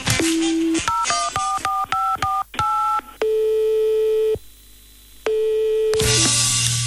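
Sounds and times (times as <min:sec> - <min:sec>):
long steady telephone ringing tones: 0:00.2 - 0:04.4, 0:05.2 - 0:06.2
touch-tone beeps of a telephone number being dialed on a keypad: 0:00.4 - 0:03.4.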